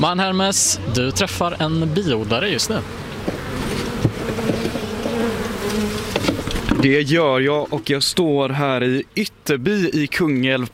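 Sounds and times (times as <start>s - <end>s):
speech: 0.0s - 3.4s, 6.8s - 10.7s
many honeybees buzzing in flight: 0.1s - 6.9s.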